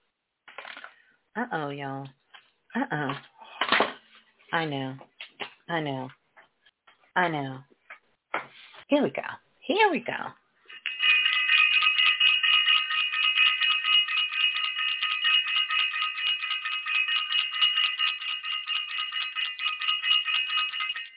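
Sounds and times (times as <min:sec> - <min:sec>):
speech: 0:01.4 - 0:02.2, 0:02.8 - 0:03.3, 0:04.5 - 0:05.1, 0:05.7 - 0:06.2, 0:07.2 - 0:07.7, 0:08.9 - 0:10.4
bell ringing with a trilling clang: 0:10.7 - 0:21.1.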